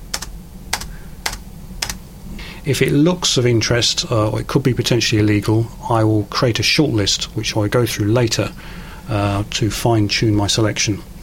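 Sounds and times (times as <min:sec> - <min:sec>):
computer keyboard spacebar clicks: 0:00.0 - 0:02.0
speech: 0:02.6 - 0:11.1.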